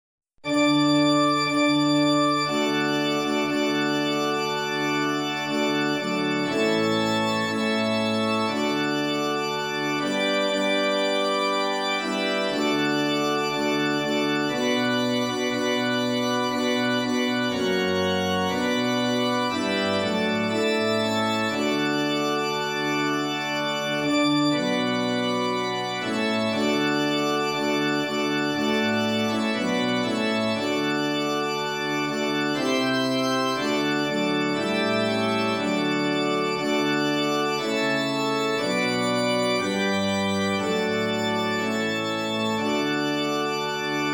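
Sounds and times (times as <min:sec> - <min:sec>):
church organ playing in D major: 0:00.5 - 0:44.1.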